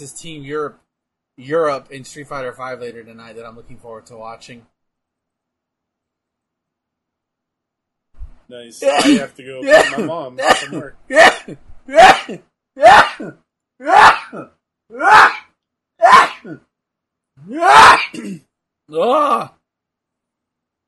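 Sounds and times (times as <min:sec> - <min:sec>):
speech: 0:00.0 - 0:00.8, 0:01.4 - 0:04.7, 0:08.5 - 0:15.4, 0:16.0 - 0:16.7, 0:17.4 - 0:19.6
loud sneezes: 0:08.8 - 0:15.4, 0:16.0 - 0:16.6, 0:17.5 - 0:18.5.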